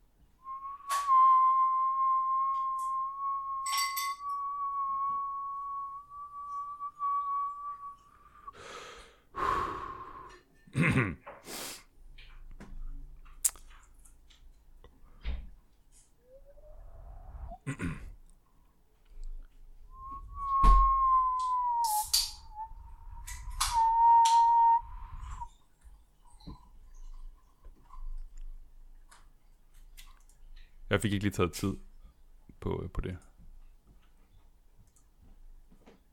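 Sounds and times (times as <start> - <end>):
person whistling one long sustained tone: 0.4 - 8.8, 16.2 - 17.6, 19.9 - 25.5
speech: 11.0 - 11.2, 31.0 - 31.9, 32.6 - 33.3.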